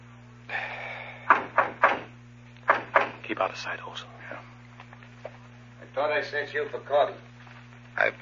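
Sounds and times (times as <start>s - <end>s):
knocking on a door: 1.3s - 2.1s, 2.7s - 3.2s
speech: 3.3s - 4.5s, 6.0s - 7.3s, 8.0s - 8.2s.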